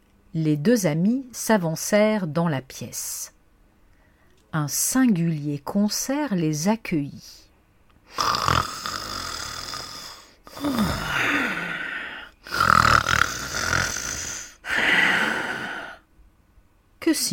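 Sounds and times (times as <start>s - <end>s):
speech: 0.3s - 3.4s, 4.5s - 7.5s, 8.1s - 8.8s, 10.6s - 11.5s, 17.1s - 17.3s
loud human snoring: 8.1s - 16.0s.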